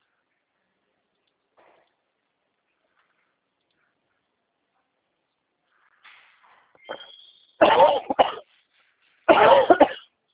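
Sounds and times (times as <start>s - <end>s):
person coughing: 7.6s - 8.4s, 9.3s - 10.1s.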